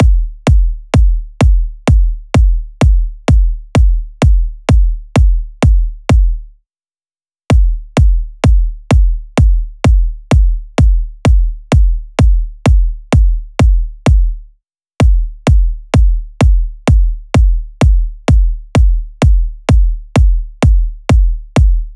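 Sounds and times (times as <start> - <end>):
bass drum loop: 0.0 - 6.5, 7.5 - 21.9.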